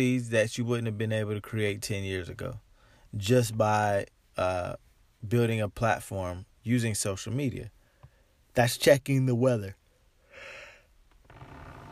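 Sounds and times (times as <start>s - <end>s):
speech: 0.0s - 7.8s, 8.6s - 9.8s
soft breathing: 2.6s - 3.2s, 9.9s - 11.0s.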